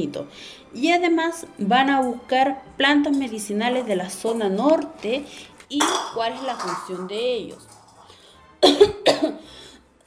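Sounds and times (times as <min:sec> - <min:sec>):
speech: 0:00.0 - 0:07.7, 0:08.6 - 0:09.6
person with a cold coming on coughing harshly: 0:08.6 - 0:09.5.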